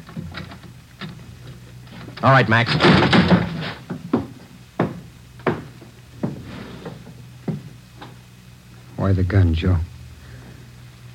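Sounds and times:
speech: 2.2s - 3.2s, 9.1s - 9.9s
heavy thuds of a door being kicked down: 2.7s - 6.4s.

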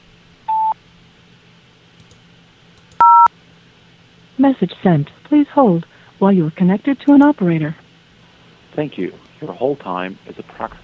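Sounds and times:
faint telephone line hum: 0.0s - 10.8s
telephone keypad DTMF tones on an automated hold line: 3.0s - 3.3s
speech: 4.4s - 7.8s, 8.8s - 10.8s.

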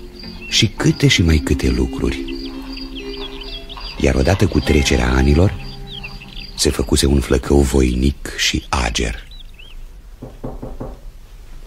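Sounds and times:
hiss: 0.0s - 11.6s
speech: 0.6s - 2.4s, 4.0s - 5.6s, 6.6s - 9.3s
knocking on a door: 10.2s - 11.1s.

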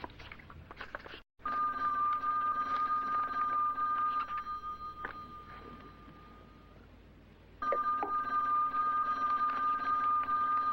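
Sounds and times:
telephone with steady high electronic ring: 1.4s - 6.8s, 7.6s - 10.7s.

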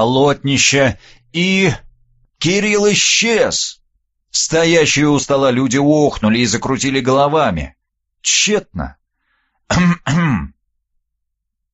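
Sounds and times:
speech: 0.0s - 1.8s, 2.4s - 9.0s, 9.7s - 10.6s
person clearing throat: 9.7s - 10.6s.

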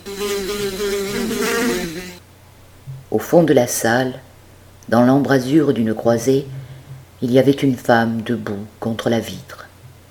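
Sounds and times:
swarm of flies buzzing in a room: 0.0s - 2.2s
speech: 0.2s - 1.0s, 3.1s - 4.3s, 4.9s - 6.6s, 7.2s - 9.6s.

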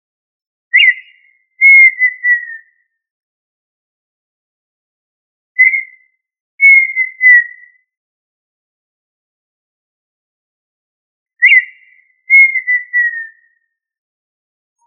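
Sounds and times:
quail whistled call: 0.8s - 2.7s, 5.6s - 6.0s, 6.6s - 7.7s, 11.4s - 13.4s.

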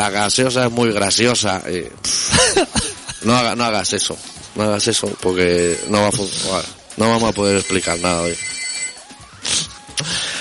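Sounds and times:
speech: 0.0s - 8.6s
telephone ringing in shrill electronic tones: 5.5s - 6.2s, 7.3s - 9.2s.

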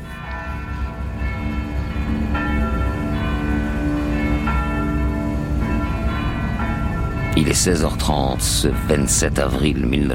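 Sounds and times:
convent church bells ringing at full peal as an air-raid alarm: 0.0s - 10.1s
speech: 7.5s - 10.1s.

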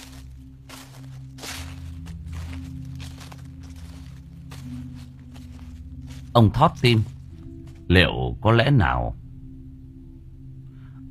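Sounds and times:
dry leaves crunching underfoot outside: 0.0s - 7.9s
slippers shuffling over a dirt floor: 0.0s - 7.9s
constant low hum: 0.0s - 11.1s
speech: 6.4s - 7.2s, 7.9s - 9.2s.

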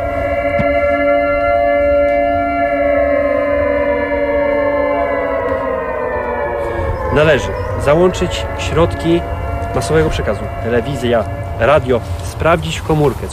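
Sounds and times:
civil defense alarm siren mounted on a building wailing: 0.0s - 13.3s
speech: 7.2s - 13.3s.

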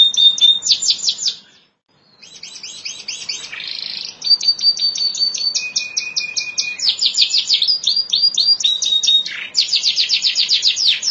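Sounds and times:
canary singing: 0.0s - 11.1s.

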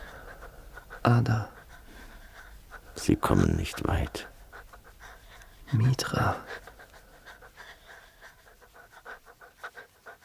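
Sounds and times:
heavy panting of someone hurrying: 0.0s - 10.2s
speech: 1.1s - 1.6s, 3.0s - 4.3s, 5.7s - 6.6s.

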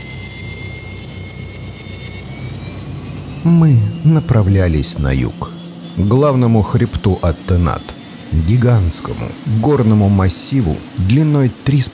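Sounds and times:
speech: 3.4s - 11.9s
aircraft-type ship's engines roaring as it takes off: 3.5s - 11.9s.

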